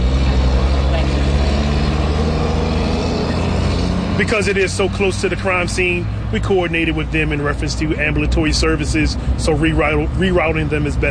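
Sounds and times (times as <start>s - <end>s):
motor vehicle passing by on the street: 0.0s - 6.5s
speech: 4.2s - 11.0s.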